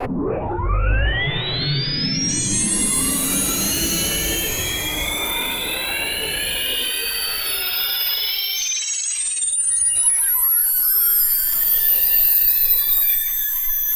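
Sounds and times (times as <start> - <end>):
sci-fi alien UFO zooming: 0.0 - 8.5.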